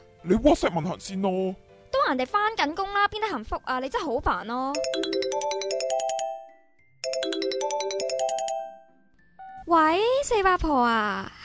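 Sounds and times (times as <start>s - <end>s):
speech: 0.2s - 5.6s, 9.7s - 11.4s
mobile phone ringtone chiming electronic melody on a bus: 4.7s - 9.7s.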